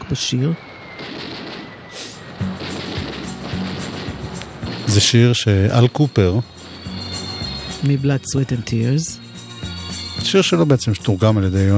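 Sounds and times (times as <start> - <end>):
speech: 0.1 - 1.3, 4.9 - 6.6, 7.8 - 9.2, 10.2 - 11.7
explosion sound effects at a song's start: 1.0 - 6.0.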